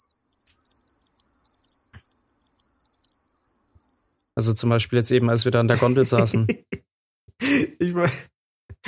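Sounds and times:
cricket trill: 0:00.0 - 0:04.5
speech: 0:04.4 - 0:06.8, 0:08.0 - 0:08.8
laughter: 0:05.7 - 0:06.8.

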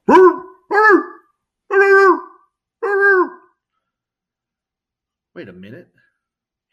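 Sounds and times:
voice imitating a T-Rex barking like a dog: 0:00.0 - 0:03.5
speech: 0:05.4 - 0:06.1.

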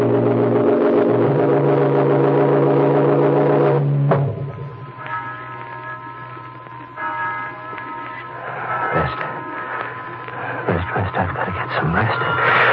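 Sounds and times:
low droning hum: 0:00.0 - 0:12.7
many bells ringing: 0:04.9 - 0:11.0.

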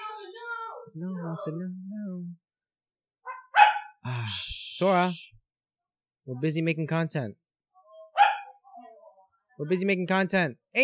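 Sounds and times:
speech: 0:00.2 - 0:02.4, 0:04.0 - 0:05.4, 0:06.3 - 0:07.4, 0:09.6 - 0:10.8
dog barking into the microphone: 0:03.2 - 0:04.0, 0:08.1 - 0:08.6.

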